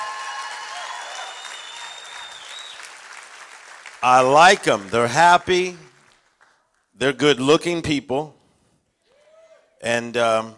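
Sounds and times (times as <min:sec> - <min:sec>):
audience applauding: 0:00.0 - 0:06.7
faint whistles: 0:01.1 - 0:02.9
speech: 0:04.0 - 0:05.8, 0:07.0 - 0:08.4, 0:09.8 - 0:10.5.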